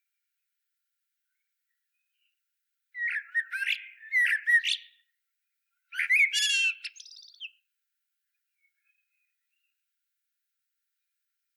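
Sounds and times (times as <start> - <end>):
Common blackbird singing: 3.0 - 5.0, 5.9 - 7.6.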